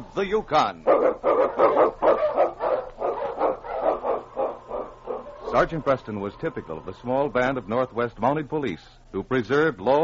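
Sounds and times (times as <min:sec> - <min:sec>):
speech: 0:00.0 - 0:02.6, 0:05.5 - 0:10.0
husky sled dogs barking: 0:00.8 - 0:07.0.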